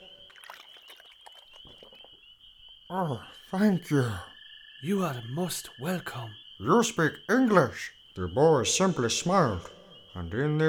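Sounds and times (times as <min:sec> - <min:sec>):
water poured from a bucket: 0:00.0 - 0:02.2
thin steady high tone: 0:02.9 - 0:08.6
speech: 0:02.9 - 0:10.6.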